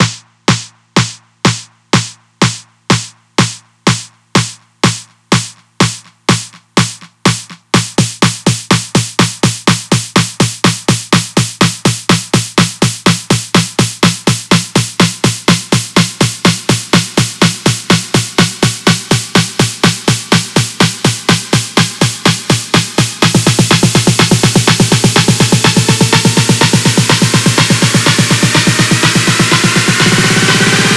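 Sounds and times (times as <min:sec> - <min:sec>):
snare drum build with reverb: 0:00.0 - 0:30.9.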